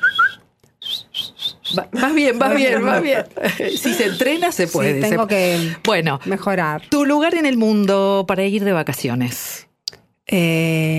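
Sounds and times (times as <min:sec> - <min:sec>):
person learning to whistle attempting to whistle: 0:00.0 - 0:01.9
speech: 0:01.7 - 0:09.7, 0:10.3 - 0:10.9
person laughing: 0:02.0 - 0:04.4.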